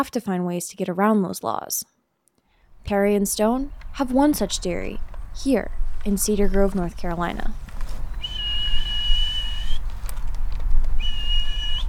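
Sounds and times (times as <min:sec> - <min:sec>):
speech: 0:00.0 - 0:02.0, 0:02.8 - 0:07.6
man whistling high notes to call cows outdoors: 0:08.2 - 0:09.8, 0:11.0 - 0:11.8.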